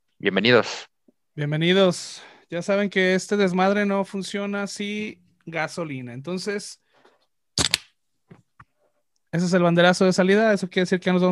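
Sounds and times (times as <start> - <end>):
speech: 0.2 - 6.8, 9.3 - 11.2
Corona beer can cracked open with a metallic pop: 7.6 - 7.9.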